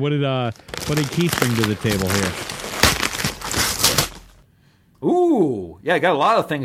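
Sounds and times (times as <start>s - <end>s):
speech: 0.0s - 2.6s, 5.0s - 6.6s
packaging crinkling and crushing as packages are unwrapped: 0.4s - 4.4s.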